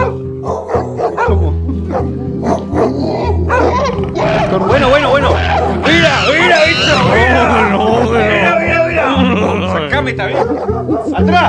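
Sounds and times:
several dogs barking: 0.0s - 8.6s, 10.2s - 11.4s
laughter: 1.2s - 2.8s, 3.4s - 11.4s
low growling rumble: 2.9s - 8.8s.

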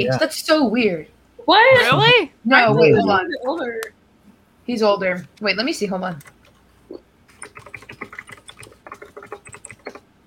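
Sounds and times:
speech: 0.0s - 4.0s, 4.7s - 7.0s
typing on a 60% mechanical keyboard: 6.2s - 6.6s, 7.3s - 10.0s.

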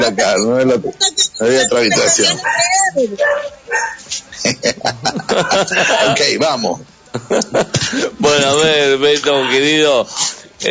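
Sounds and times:
speech: 0.0s - 10.6s
dog barking: 3.2s - 4.0s
laughter: 4.4s - 8.5s.

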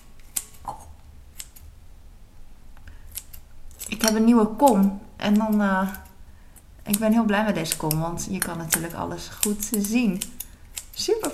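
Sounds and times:
kitchen scissors snipping raw onion finely: 3.1s - 6.2s, 6.8s - 11.3s
speech: 4.0s - 6.0s, 6.9s - 10.4s, 11.0s - 11.3s.

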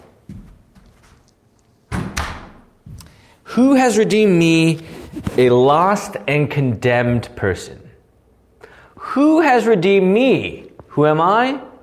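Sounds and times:
faint shuffling: 0.0s - 1.8s, 4.1s - 6.2s
door pushed shut with a scraping swing: 1.9s - 2.7s
speech: 3.6s - 7.8s, 9.2s - 11.7s.

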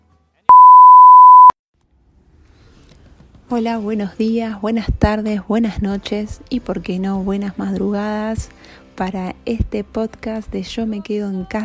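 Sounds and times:
single steady electronic beep: 0.5s - 1.5s
speech: 3.5s - 11.6s.

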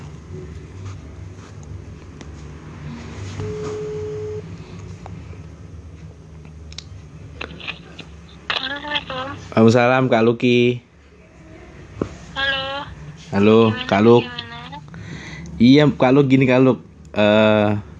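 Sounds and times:
phone call ringing tone: 3.4s - 4.5s
speech: 9.6s - 10.9s, 13.4s - 14.4s, 15.6s - 17.9s.

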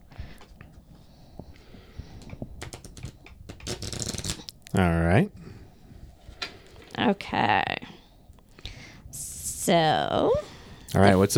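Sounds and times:
deck of conversation question cards being shuffled: 2.6s - 4.6s
speech: 4.8s - 5.4s, 7.1s - 7.9s, 9.6s - 11.3s.

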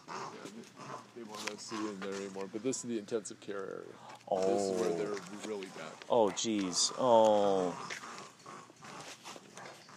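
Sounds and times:
animals growling and snarling at each other: 0.0s - 1.8s, 4.3s - 9.9s
speech: 0.4s - 8.1s.

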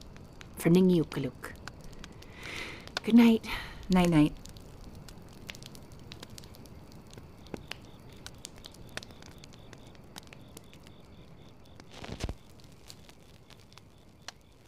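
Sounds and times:
embers of a fire crackling: 0.0s - 14.6s
speech: 0.6s - 1.6s, 2.5s - 4.4s.

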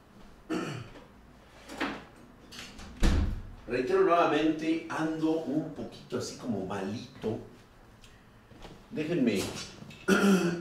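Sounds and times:
door thudding shut: 2.9s - 3.5s
speech: 3.7s - 7.5s, 8.9s - 10.6s.

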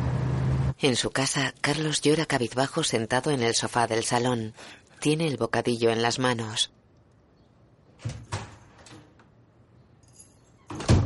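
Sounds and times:
speech: 0.8s - 6.8s, 8.0s - 8.3s
keys being put away into a handbag: 10.0s - 10.7s.

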